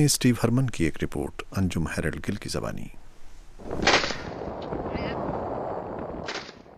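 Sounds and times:
speech: 0.0s - 3.0s
gunshots fired from a ship at men clinging to an overturned boat at sea: 3.6s - 6.7s.

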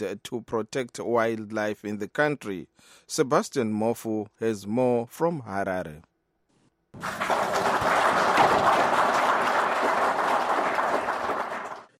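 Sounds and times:
speech: 0.0s - 6.1s, 6.9s - 7.3s
officials applauding after receiving anti-poaching equipment in Harare: 7.0s - 11.9s.

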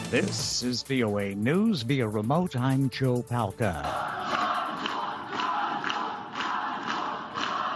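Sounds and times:
speech: 0.1s - 4.2s
large crowd shouting outside a jail: 3.8s - 7.7s.

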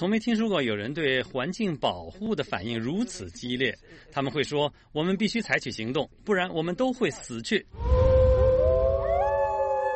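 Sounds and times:
speech: 0.0s - 8.1s
low rumbling background: 7.7s - 9.8s
wolf cub howling: 7.8s - 9.9s.

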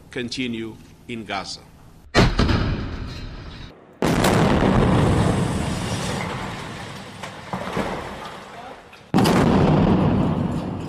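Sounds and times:
speech: 0.1s - 1.7s
missile-strike explosions on an apartment building: 2.1s - 7.2s, 9.1s - 10.8s
debris noise: 2.4s - 10.8s.

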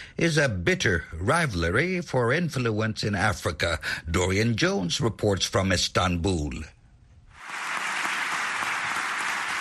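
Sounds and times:
speech: 0.2s - 6.8s
rousing applause from parliamentary deputies: 7.4s - 9.5s.

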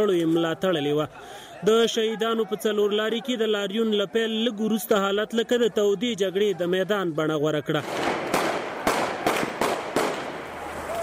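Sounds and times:
speech: 0.0s - 8.2s
steady noise: 0.0s - 11.0s
gunshots during a street protest at a city intersection in Kunar: 7.8s - 10.6s.

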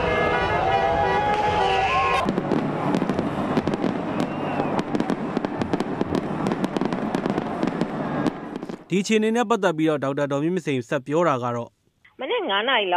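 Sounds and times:
fireworks and firecrackers bursting during a street celebration: 0.0s - 9.2s
speech: 8.9s - 11.8s, 12.5s - 12.9s.

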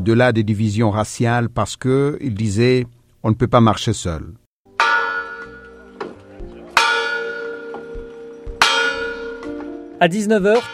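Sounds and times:
speech: 0.0s - 4.4s, 10.0s - 10.7s
large bronze church bell ringing: 4.7s - 9.9s.

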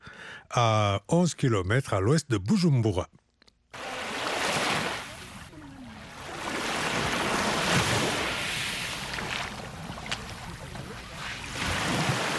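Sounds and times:
speech: 0.5s - 3.2s
small lake waves washing onto a beach: 3.8s - 12.3s.

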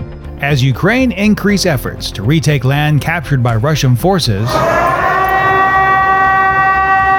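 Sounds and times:
speech: 0.5s - 4.8s
air raid sirens in Kyiv during missile strikes: 4.4s - 7.1s.

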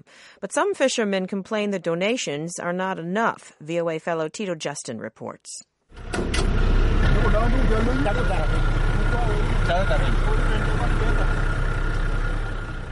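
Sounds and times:
speech: 0.1s - 11.4s
truck engine idling: 5.9s - 12.9s
men talking and calling out: 6.9s - 12.9s.

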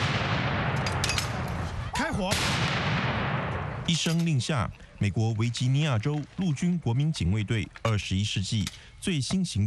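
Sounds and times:
M119A3 howitzer firing at a public demonstration: 0.0s - 1.6s, 2.3s - 4.0s
speech: 2.0s - 2.8s, 3.9s - 9.6s.

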